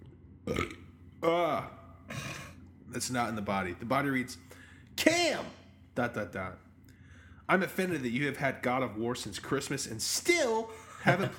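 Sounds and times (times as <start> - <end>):
loud burps: 0.5 - 2.6
speech: 1.2 - 1.8, 3.0 - 6.7, 7.5 - 11.3
laughter: 10.9 - 11.3.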